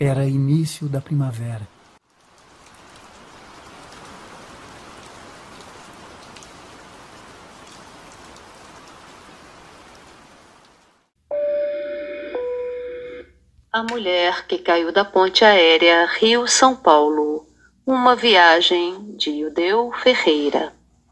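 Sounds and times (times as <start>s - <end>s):
speech: 0.0s - 1.8s, 13.8s - 20.8s
gentle rain: 0.0s - 11.2s
bright two-note electronic chime: 11.3s - 13.3s.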